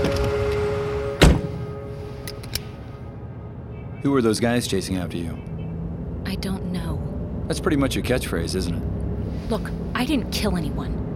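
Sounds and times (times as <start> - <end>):
car door shutting as someone gets into the car: 0.0 - 1.8
steady low engine hum: 0.0 - 11.1
speech: 4.0 - 5.6, 6.3 - 11.0.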